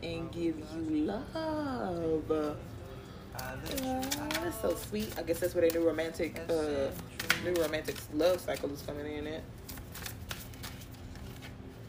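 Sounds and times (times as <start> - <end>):
speech: 0.3 - 2.8, 3.4 - 9.7
tarot card flipping over during a card reading: 3.4 - 8.8, 9.6 - 11.6.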